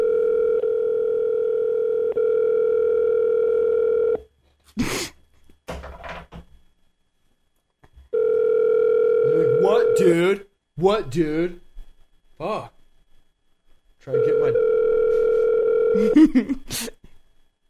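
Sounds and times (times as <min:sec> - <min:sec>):
electronic phone ringing tone, unanswered: 0:00.0 - 0:04.2, 0:08.1 - 0:10.2, 0:14.1 - 0:16.2
speech: 0:10.0 - 0:11.6, 0:16.1 - 0:16.9.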